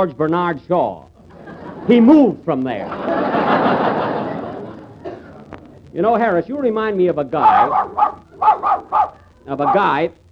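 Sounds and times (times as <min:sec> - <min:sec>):
speech: 0:00.0 - 0:01.1, 0:01.8 - 0:03.9, 0:05.9 - 0:10.2
laughter: 0:01.2 - 0:06.4, 0:07.2 - 0:10.0
dog barking: 0:07.4 - 0:10.0.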